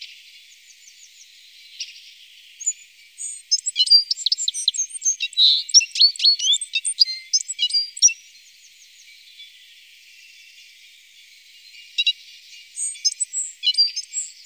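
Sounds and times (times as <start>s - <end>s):
citril finch chirping and buzzing: 2.6s - 8.1s, 12.8s - 14.4s.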